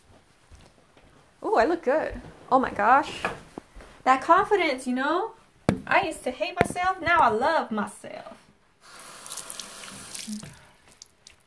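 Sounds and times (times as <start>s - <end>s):
speech: 1.6s - 3.4s, 4.0s - 8.1s
water dabbed and brushed through stray hairs: 9.2s - 11.4s
soft splashes: 9.3s - 11.4s.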